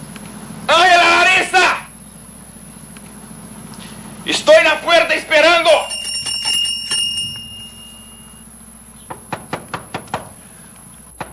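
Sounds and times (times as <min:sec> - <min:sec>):
low hum: 0:00.0 - 0:11.3
speech: 0:04.4 - 0:05.9
brief ringing chime: 0:05.7 - 0:08.7
sharp knocks on a door: 0:09.1 - 0:10.4.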